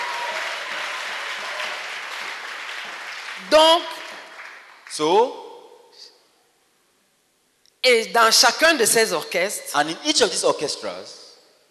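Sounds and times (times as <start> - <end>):
crowd applauding: 0.0 - 5.1
speech: 3.4 - 4.0, 4.9 - 5.4, 7.8 - 11.7.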